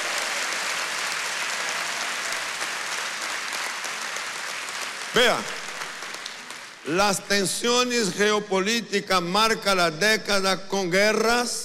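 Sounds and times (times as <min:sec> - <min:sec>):
large crowd applauding: 0:00.0 - 0:07.2
speech: 0:05.2 - 0:05.6, 0:06.8 - 0:11.6.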